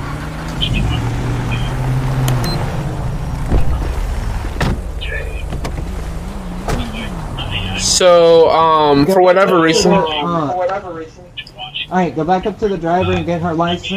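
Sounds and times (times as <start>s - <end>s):
car engine humming as a vehicle pulls forward in a police video game: 0.0s - 13.9s
loud thump: 3.4s - 5.9s
speech: 8.0s - 13.9s.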